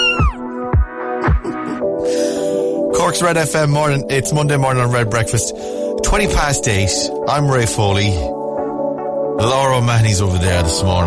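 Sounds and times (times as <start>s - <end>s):
cat meowing: 0.0s - 0.5s
bouncy musical backing: 0.0s - 11.0s
speech: 3.1s - 8.4s, 9.4s - 11.0s.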